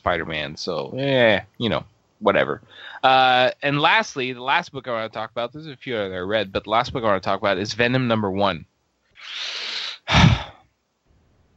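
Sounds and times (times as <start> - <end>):
speech: 0.0 - 10.5
heavy breathy burst with a low rumble: 2.6 - 3.0, 9.2 - 10.6
sharp inhale: 2.7 - 3.0, 9.2 - 10.1.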